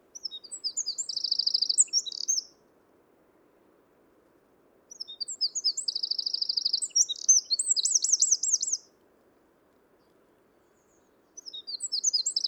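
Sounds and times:
Eurasian wren Troglodytes troglodytes singing: 0.2 - 2.5, 4.9 - 8.9, 10.8 - 12.4.

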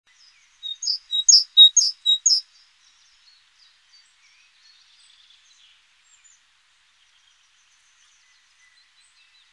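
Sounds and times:
great tit Parus major chirping: 0.6 - 2.4.

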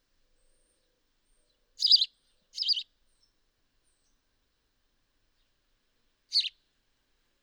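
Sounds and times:
house sparrow Passer domesticus chirping: 1.8 - 2.8, 6.3 - 6.5.

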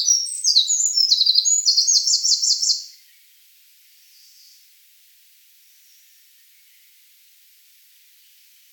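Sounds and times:
Eurasian wren Troglodytes troglodytes song with fast trills and buzzy rattle: 0.0 - 3.0.

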